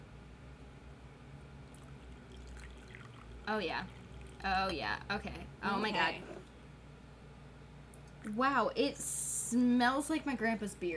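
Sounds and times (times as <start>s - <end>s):
tea being poured next to the microphone for ASMR: 1.7s - 4.8s
speech: 3.5s - 6.4s, 8.2s - 10.9s.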